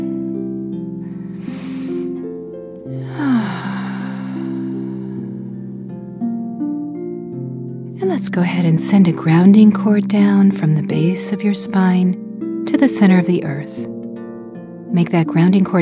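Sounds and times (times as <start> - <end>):
soft sustained ambient music tones: 0.0 - 6.2
slow deep breaths, inhale and long exhale: 1.0 - 6.0
speech: 8.2 - 14.0, 14.9 - 15.8.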